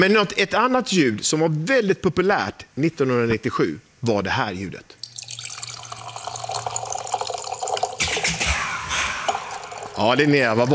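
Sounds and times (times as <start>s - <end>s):
speech: 0.0s - 5.0s, 10.0s - 10.7s
wine pouring from a bag-in-box tap: 5.0s - 8.0s, 9.3s - 10.7s.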